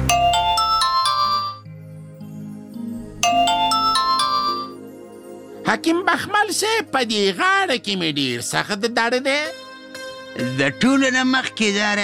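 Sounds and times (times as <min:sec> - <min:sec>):
mobile phone ringtone: 0:00.1 - 0:01.6, 0:03.2 - 0:04.8
speech: 0:05.8 - 0:09.6, 0:10.4 - 0:12.0.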